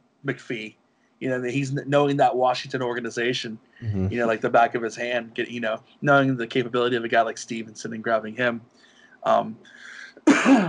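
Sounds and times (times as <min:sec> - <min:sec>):
speech: 0:00.2 - 0:10.6
throat clearing: 0:09.9 - 0:10.6.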